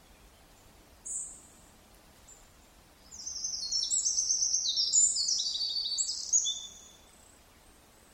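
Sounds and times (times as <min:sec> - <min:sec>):
Eurasian wren singing, Troglodytes troglodytes: 0:03.1 - 0:07.0.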